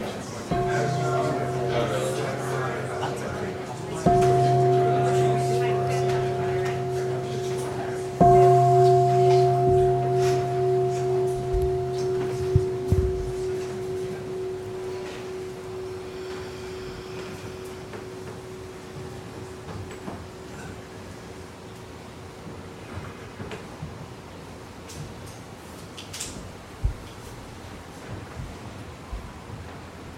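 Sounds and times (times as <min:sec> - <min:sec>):
meditation bell ringing: 0:00.0 - 0:22.2.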